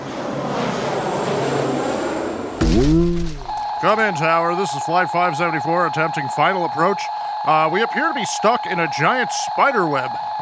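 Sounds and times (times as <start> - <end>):
airplane engine roar in flight: 0.0 - 10.4
swooping voice-like tone: 2.6 - 4.1, 5.4 - 10.4
speech: 3.8 - 10.4.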